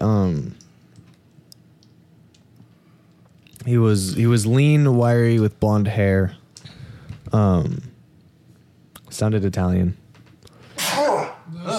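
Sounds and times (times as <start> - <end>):
speech: 3.7 - 6.4, 7.3 - 7.9, 9.2 - 10.0
sneeze: 10.8 - 11.7
voiced murmur: 11.0 - 11.7.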